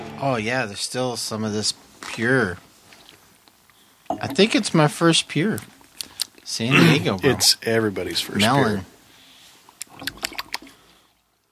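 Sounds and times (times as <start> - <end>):
speech: 0.2 - 2.7, 4.2 - 5.8, 6.5 - 8.9
beer glugging and fizzing as it is poured from the bottom of a can: 4.0 - 7.7, 9.8 - 10.8.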